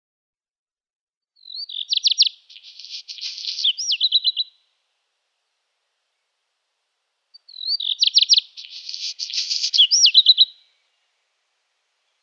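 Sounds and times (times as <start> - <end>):
black redstart singing with rattling trill and hissing crackly middle: 1.4 - 4.6, 7.3 - 11.3.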